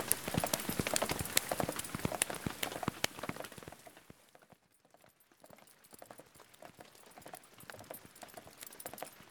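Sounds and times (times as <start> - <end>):
rain pattering: 0.0 - 4.2.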